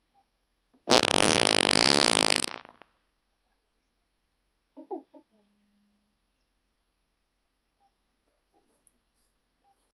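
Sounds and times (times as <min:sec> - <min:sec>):
big wet fart: 0:00.9 - 0:02.8.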